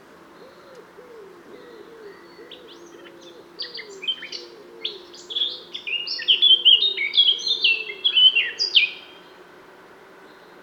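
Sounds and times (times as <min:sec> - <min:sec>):
Eurasian blackcap Sylvia atricapilla song of warbled scratchy and fluty phrases: 0:02.3 - 0:09.4.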